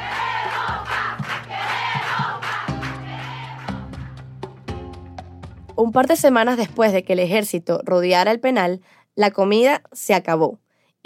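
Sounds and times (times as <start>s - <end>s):
large crowd shouting a protest chant in unison: 0.0s - 3.8s
speech: 5.8s - 11.0s.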